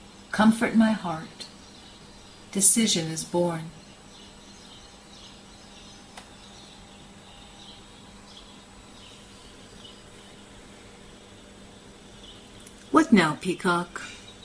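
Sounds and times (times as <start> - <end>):
faint bird song with high chirps: 0.0 - 14.4
steady hiss: 0.0 - 14.4
speech: 0.3 - 1.4, 2.5 - 3.8, 13.1 - 14.2.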